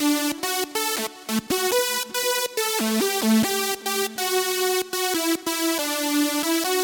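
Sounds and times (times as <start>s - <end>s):
mega dance synth: 0.0s - 6.8s.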